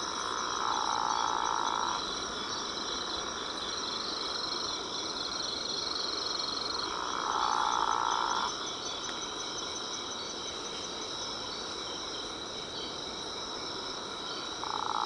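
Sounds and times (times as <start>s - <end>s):
Physalaemus atlanticus frog giving a long steady call: 0.0s - 2.1s, 6.8s - 8.8s, 14.5s - 15.0s
shrill insect chorus: 0.0s - 15.0s.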